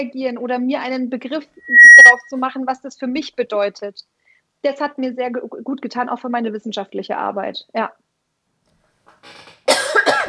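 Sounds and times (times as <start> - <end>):
speech: 0.0 - 8.0, 9.2 - 9.5
throaty rasp leading into a harsh cough: 9.7 - 10.2.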